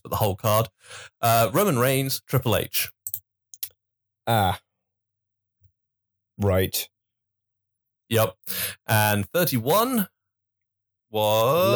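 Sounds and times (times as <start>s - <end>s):
speech: 0.2s - 3.0s, 4.3s - 4.6s, 6.4s - 6.9s, 8.1s - 10.2s, 11.1s - 11.7s
computer mouse clicking on a link: 3.0s - 3.7s
short vocal sound: 11.2s - 11.7s.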